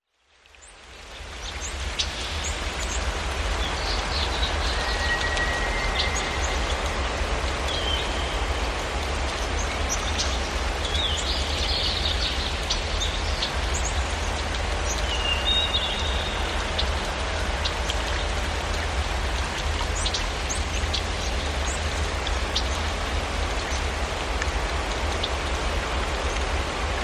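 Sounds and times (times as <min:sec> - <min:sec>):
creek flowing at a placid lake: 0:00.1 - 0:27.0.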